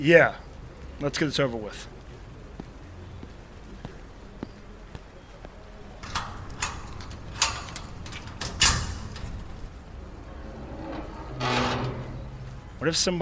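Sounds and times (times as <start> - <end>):
speech: 0.0 - 0.4, 1.0 - 1.9, 12.8 - 13.1
key working a lock: 6.0 - 9.6
lock clunk: 6.0 - 9.6, 10.4 - 12.5
door swinging open: 6.0 - 12.7.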